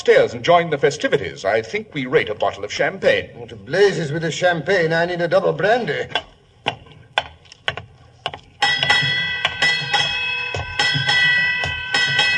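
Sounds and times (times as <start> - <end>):
speech: 0.0 - 6.3
ship's bell striking eight bells: 8.6 - 12.3.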